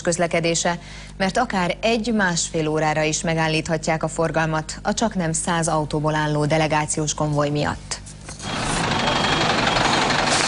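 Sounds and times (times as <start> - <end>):
speech: 0.0 - 8.0
crane truck engine rumbling while preparing to lift a car on a city street: 8.3 - 10.4.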